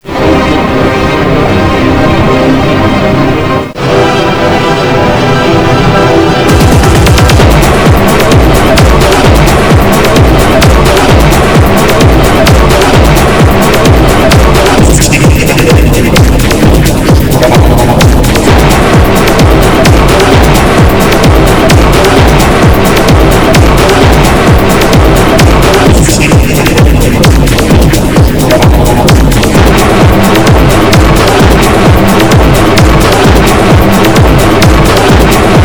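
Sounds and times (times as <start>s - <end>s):
psychedelic trance music: 0.0s - 35.6s
laughter: 6.5s - 35.6s.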